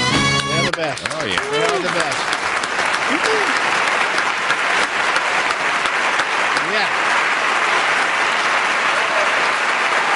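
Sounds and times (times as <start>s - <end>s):
audience applause: 0.2s - 10.1s
faint whoops and shouts: 3.1s - 3.6s.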